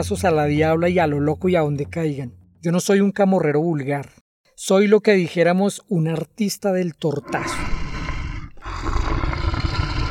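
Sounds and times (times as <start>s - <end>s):
speech: 0.0s - 7.8s
tiger roaring: 7.2s - 10.0s.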